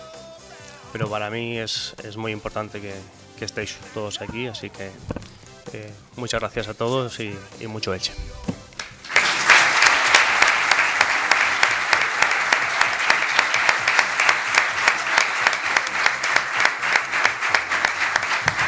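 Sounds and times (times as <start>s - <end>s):
speech: 0.9s - 8.4s
crowd applauding at a farewell tribute to a former football defender: 8.8s - 18.6s.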